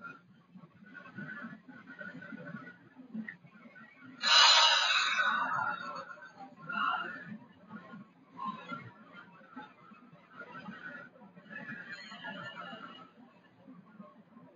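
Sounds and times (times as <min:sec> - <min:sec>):
long deep breath drawn in through the nose: 0:04.2 - 0:06.3.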